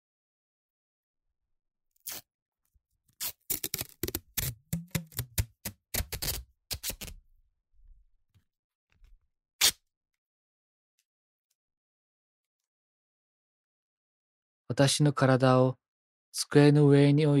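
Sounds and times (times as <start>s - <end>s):
masking tape being pulled off the roll and torn: 2.0s - 2.3s, 3.2s - 7.2s, 9.6s - 9.8s
speech: 14.7s - 15.8s, 16.4s - 17.3s.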